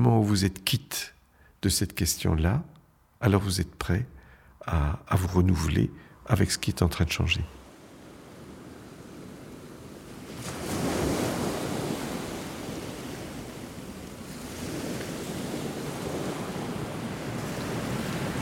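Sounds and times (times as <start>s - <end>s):
speech: 0.2s - 7.6s
rushing surf-like wash: 7.6s - 18.4s.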